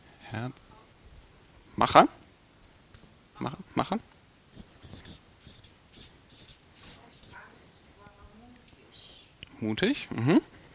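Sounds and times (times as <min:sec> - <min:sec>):
speech: 0:00.3 - 0:00.6, 0:01.8 - 0:02.2, 0:03.4 - 0:04.1, 0:09.6 - 0:10.5
pen strokes writing a short word by hand: 0:04.5 - 0:07.4.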